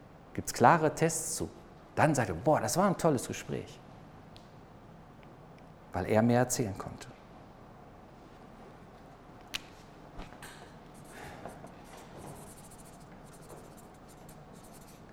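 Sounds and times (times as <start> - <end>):
speech: 0.4 - 3.8, 6.0 - 7.1
pen writing quickly on paper: 11.0 - 15.1.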